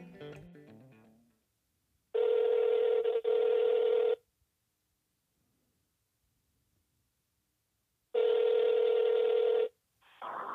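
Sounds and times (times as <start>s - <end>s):
ringback tone of an outgoing phone call: 2.2s - 4.2s, 8.2s - 9.7s.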